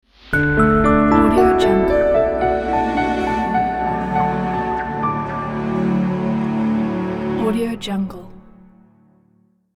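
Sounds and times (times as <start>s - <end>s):
elegant piano logo jingle: 0.3s - 8.6s.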